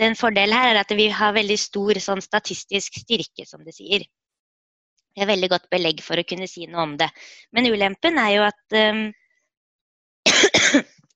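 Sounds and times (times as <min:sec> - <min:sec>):
speech: 0:00.0 - 0:04.2, 0:05.2 - 0:09.2, 0:10.7 - 0:10.9
person coughing harshly: 0:10.3 - 0:10.9.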